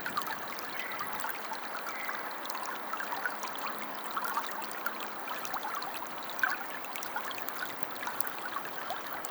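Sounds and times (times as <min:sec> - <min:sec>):
calm water: 0:00.0 - 0:09.2.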